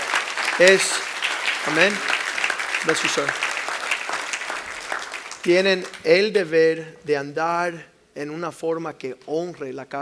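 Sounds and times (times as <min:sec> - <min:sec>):
church audience applauding: 0:00.0 - 0:06.1
speech: 0:00.6 - 0:02.2, 0:02.8 - 0:03.5, 0:05.4 - 0:10.0.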